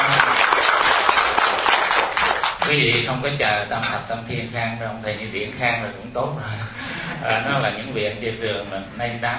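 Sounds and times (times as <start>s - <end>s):
audience applause at a gathering: 0.0s - 2.8s
speech: 2.7s - 9.3s.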